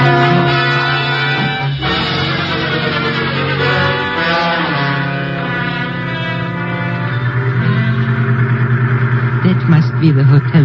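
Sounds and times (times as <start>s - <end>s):
truck engine droning while driving: 0.0s - 10.6s
speech: 10.0s - 10.6s.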